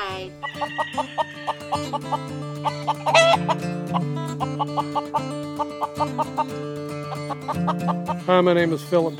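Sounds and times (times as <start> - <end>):
speech: 0.1 - 6.8, 7.5 - 9.1
chickens clucking: 0.4 - 8.4.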